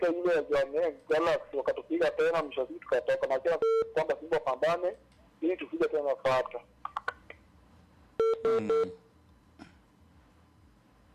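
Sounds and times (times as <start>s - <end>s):
speech: 0.0s - 6.7s, 8.2s - 9.0s
telephone keypad dialing tone beeps of an incoming call: 8.2s - 8.9s.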